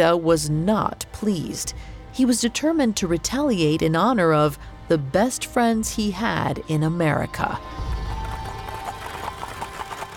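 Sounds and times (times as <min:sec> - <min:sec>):
speech: 0:00.0 - 0:07.9
hooves of a horse pulling a wagon clip-clopping: 0:07.7 - 0:10.1.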